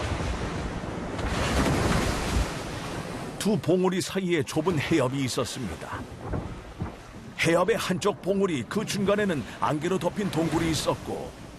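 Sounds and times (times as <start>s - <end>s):
huge waves crashing against cliffs: 0.0s - 11.5s
speech: 3.4s - 6.5s, 7.4s - 11.4s.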